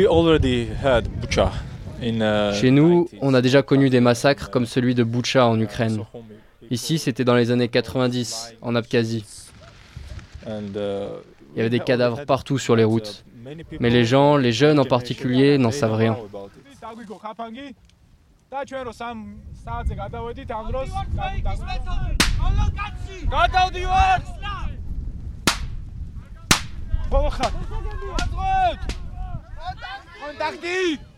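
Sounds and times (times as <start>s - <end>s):
speech: 0.0s - 9.4s, 10.4s - 17.9s, 18.5s - 24.8s, 27.1s - 29.0s, 29.6s - 31.1s
people shouting and talking: 20.8s - 24.8s, 26.2s - 31.1s
firecrackers exploding during ambush training drill: 22.2s - 22.5s, 25.5s - 25.8s, 26.5s - 26.9s.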